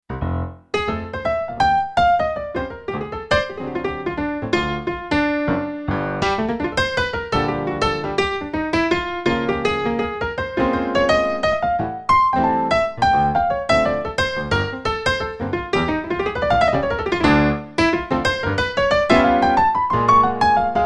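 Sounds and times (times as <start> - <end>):
mono piano: 0.0 - 20.8.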